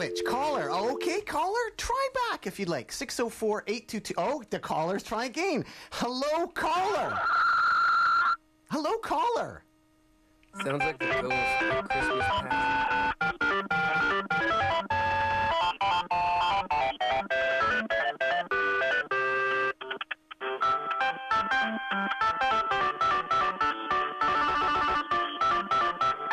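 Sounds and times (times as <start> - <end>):
electronic video game music over a telephone line: 0.0 - 1.5, 10.6 - 26.3
speech: 0.0 - 7.5, 8.7 - 9.6, 10.6 - 13.1.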